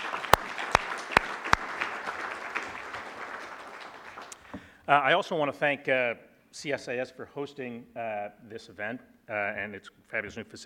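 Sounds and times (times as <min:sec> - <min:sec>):
audience applauding: 0:00.0 - 0:04.6
sharp loud claps: 0:00.0 - 0:04.6
speech: 0:04.9 - 0:10.6.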